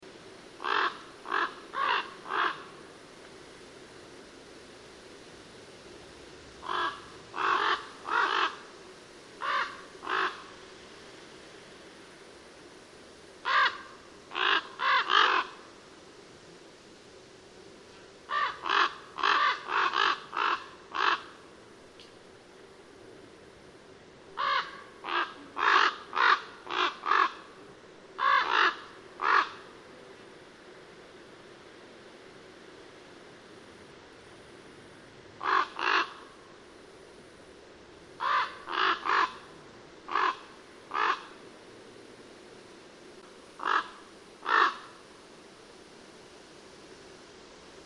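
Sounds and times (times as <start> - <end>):
common raven calling: 0.6 - 2.8, 6.6 - 8.7, 9.4 - 10.6, 13.4 - 15.7, 18.3 - 21.5, 24.3 - 27.6, 28.2 - 30.1, 35.4 - 36.6, 38.2 - 41.4, 43.6 - 45.0.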